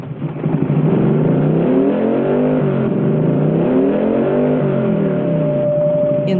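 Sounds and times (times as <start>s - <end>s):
motorcycle engine revving as the rider twists the throttle: 0.0s - 6.3s.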